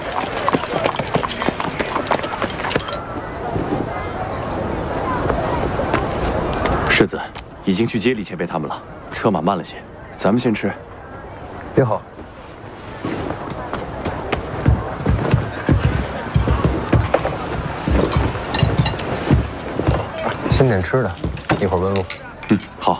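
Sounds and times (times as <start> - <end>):
horse-drawn carriage hooves clip-clopping on arrival in a town: 0.0 - 3.8, 13.2 - 22.9
people talking: 0.0 - 22.9.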